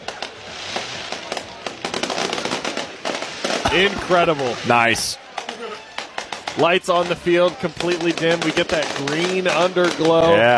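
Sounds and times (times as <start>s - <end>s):
fireworks crackling and popping: 0.0s - 10.5s
speech: 3.7s - 5.2s, 6.6s - 10.5s.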